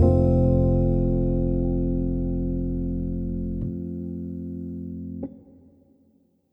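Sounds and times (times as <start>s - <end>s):
lush outro synth pads: 0.0s - 3.9s.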